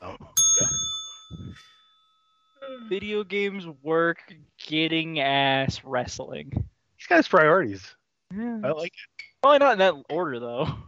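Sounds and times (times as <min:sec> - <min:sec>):
bell struck with a bright clear ring: 0:00.4 - 0:03.3
speech: 0:02.7 - 0:10.8.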